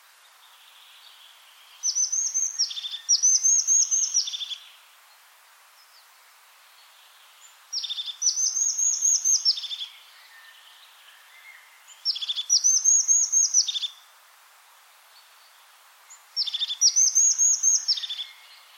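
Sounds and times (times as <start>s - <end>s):
crested tit calling: 1.8s - 4.6s, 7.7s - 10.0s, 11.9s - 14.0s, 16.4s - 18.7s.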